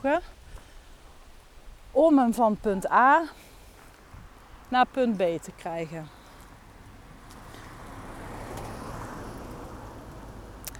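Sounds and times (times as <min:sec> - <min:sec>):
speech: 0:00.0 - 0:00.4, 0:02.0 - 0:03.4, 0:04.7 - 0:06.2
steady broadband rumble of road traffic: 0:02.0 - 0:10.7
cars passing on a country road: 0:03.9 - 0:10.7.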